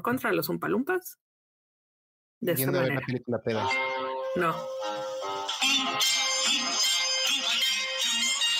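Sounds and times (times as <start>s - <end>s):
speech: 0.0s - 1.2s, 2.4s - 4.8s, 5.7s - 7.5s
phone text message notification melody: 3.6s - 8.4s.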